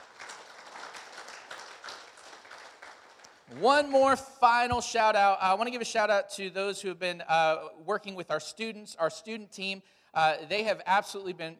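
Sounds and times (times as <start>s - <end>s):
crowd applauding: 0.0s - 3.8s
speech: 3.5s - 11.5s.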